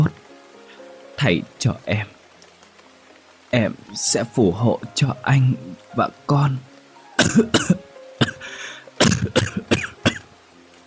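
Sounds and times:
speech: 0:01.2 - 0:02.2, 0:03.5 - 0:07.9
gravely ill old woman coughing harshly: 0:07.2 - 0:08.4, 0:09.0 - 0:10.2.

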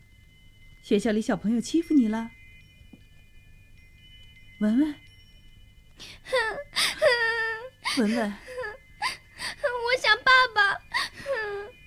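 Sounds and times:
speech: 0:00.9 - 0:02.4, 0:04.6 - 0:05.0, 0:08.0 - 0:08.5
child crying in wavering whimpering wails: 0:06.3 - 0:11.8.

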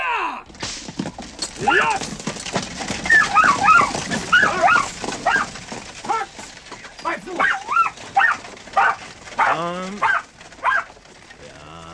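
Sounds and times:
speech: 0:01.6 - 0:02.1
dog yipping and barking: 0:03.1 - 0:05.5, 0:07.4 - 0:11.0.

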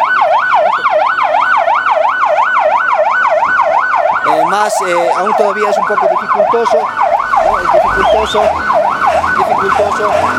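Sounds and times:
ambulance sirens arriving at the scene of a deadly fire: 0:00.0 - 0:10.3
speech: 0:04.6 - 0:10.3.

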